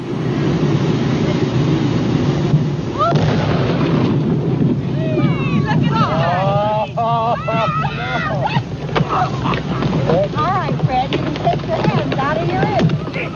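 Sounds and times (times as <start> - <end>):
dynamite explosion under a dead beached whale: 0.0 - 13.3
spectators crying out and shouting: 5.0 - 10.3
laughter: 5.8 - 10.8, 12.4 - 13.3.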